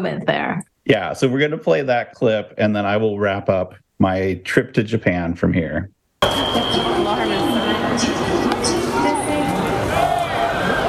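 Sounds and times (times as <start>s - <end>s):
speech: 0.0s - 9.3s
foul-ball warning alarm at a baseball stadium, steady high-pitched electronic tone: 6.2s - 8.3s
dense crowd chatter and murmur at a baseball stadium: 6.2s - 10.8s.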